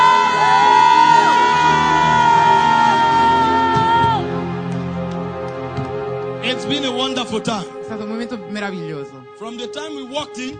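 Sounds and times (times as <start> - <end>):
church congregation shouting to the Lord: 0.0 - 4.7
speech: 7.0 - 10.5.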